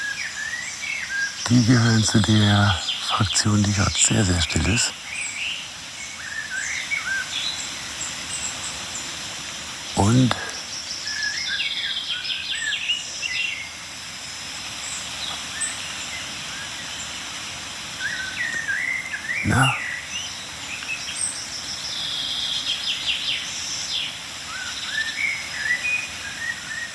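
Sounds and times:
outdoor hiss: 0.0s - 26.9s
tit calls: 1.5s - 4.9s, 10.0s - 10.7s, 19.4s - 19.9s
speech: 1.5s - 5.0s, 10.0s - 10.5s, 19.5s - 19.8s.

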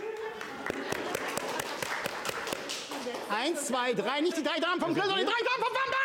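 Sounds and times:
small group applauding: 0.0s - 3.3s
speech: 3.3s - 5.9s.

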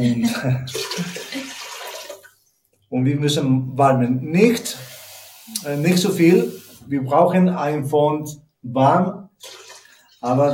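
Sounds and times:
speech: 0.0s - 1.1s, 3.0s - 4.9s, 5.5s - 9.6s, 10.2s - 10.5s
water pouring into a pot being filled for paella: 0.6s - 2.4s, 4.6s - 6.8s, 9.4s - 10.2s.

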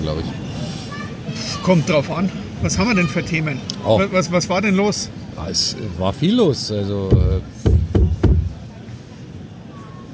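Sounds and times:
speech: 0.0s - 0.6s, 1.3s - 7.6s
firm knocking: 7.1s - 8.6s.

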